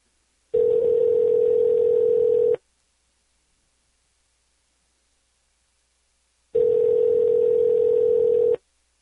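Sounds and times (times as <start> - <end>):
telephone line tone while calling a number: 0.6 - 2.6, 6.6 - 8.6.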